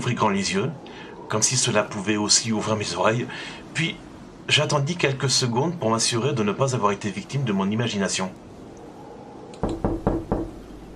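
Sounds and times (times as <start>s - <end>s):
speech: 0.1s - 8.5s
soft hesitant knocks on a door: 9.6s - 10.6s.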